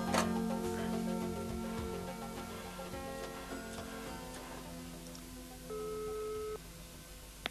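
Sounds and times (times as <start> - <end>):
music: 0.0 - 6.6
telephone ring tone: 5.7 - 6.6.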